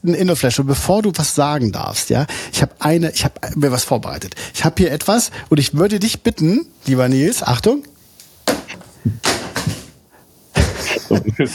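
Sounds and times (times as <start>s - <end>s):
speech: 0.0s - 7.9s, 9.0s - 9.4s, 11.1s - 11.5s
iPhone dropping onto a hard surface: 8.4s - 10.0s
laughter: 10.6s - 11.5s.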